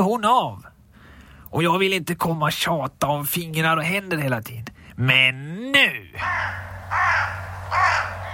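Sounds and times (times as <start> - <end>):
speech: 0.0 - 0.7, 1.5 - 8.1
low steady hum: 0.0 - 8.3
crow cawing: 6.2 - 8.3.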